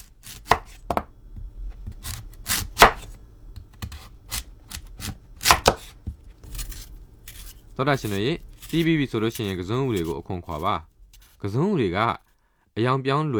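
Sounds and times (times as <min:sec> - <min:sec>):
knife chopping sweet potatoes into thick rings on a board: 0:00.0 - 0:11.4
speech: 0:07.8 - 0:12.2, 0:12.8 - 0:13.3.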